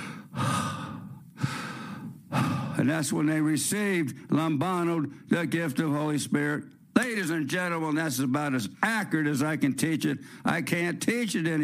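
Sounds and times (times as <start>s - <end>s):
person imitating heavy breathing: 0.0s - 2.8s
speech: 2.8s - 11.6s.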